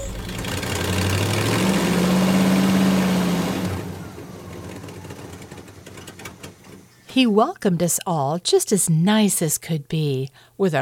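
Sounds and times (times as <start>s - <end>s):
truck engine idling: 0.0s - 6.9s
speech: 7.2s - 10.8s.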